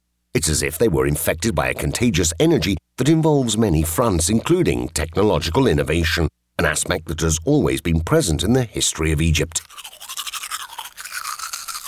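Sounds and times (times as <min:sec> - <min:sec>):
speech: 0:00.4 - 0:10.0
toothbrush scrubbing against teeth: 0:09.5 - 0:11.8.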